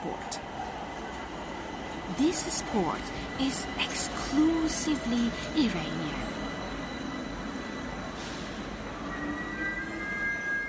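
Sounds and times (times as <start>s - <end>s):
subway train rumbling: 0.0s - 10.6s
speech: 2.2s - 6.4s
high metallic subway train wheel squeals: 6.4s - 10.6s.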